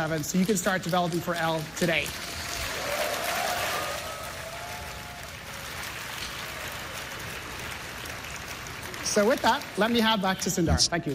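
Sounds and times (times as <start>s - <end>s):
speech: 0.0s - 2.4s, 9.2s - 11.1s
large crowd applauding at a developer keynote: 0.0s - 10.7s
faint whistles and cheers: 2.5s - 5.6s.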